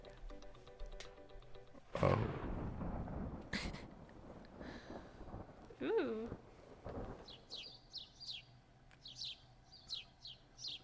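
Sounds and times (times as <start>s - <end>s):
speech: 2.0s - 2.4s, 5.8s - 6.4s
low rumble: 2.0s - 10.8s
birds chirping: 7.1s - 10.8s.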